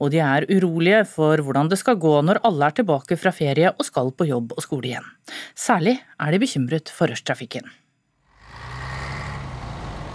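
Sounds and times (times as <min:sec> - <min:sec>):
speech: 0:00.0 - 0:07.8
heavy city bus engine revving as the bus pulls away: 0:08.3 - 0:10.1.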